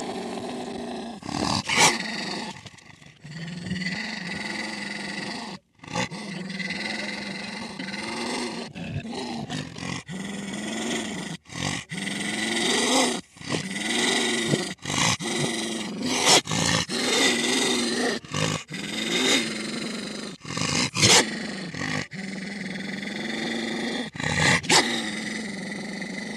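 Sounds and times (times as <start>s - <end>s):
wolf growling: 0.0s - 26.3s.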